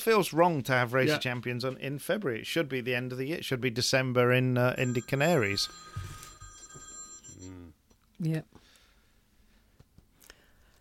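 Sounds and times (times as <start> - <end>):
speech: 0.0 - 6.1, 8.2 - 8.6
phone bright electronic ringtone: 4.8 - 7.6.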